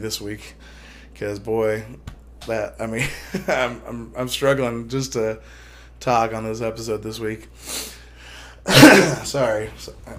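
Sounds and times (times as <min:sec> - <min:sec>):
speech: 0:00.0 - 0:08.0, 0:08.6 - 0:10.1
single harsh forceful cough: 0:08.7 - 0:09.5.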